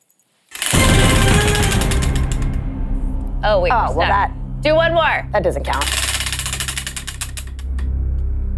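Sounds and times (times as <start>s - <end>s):
prize wheel spinning with pointer clicking: 0.5s - 2.6s, 5.8s - 7.8s
speech: 3.4s - 6.0s.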